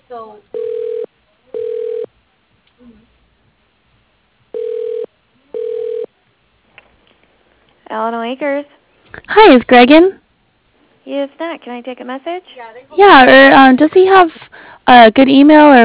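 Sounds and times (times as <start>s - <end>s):
speech: 0.1s - 0.6s, 8.2s - 10.2s, 11.1s - 15.8s
telephone ringback tones while a call is transferred: 0.5s - 2.1s, 4.5s - 6.1s.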